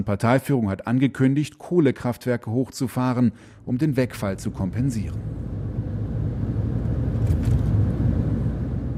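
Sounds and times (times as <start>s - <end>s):
speech: 0.0s - 5.6s
car driving from Poyang Lake toward the Yangtze River in China: 5.0s - 8.9s.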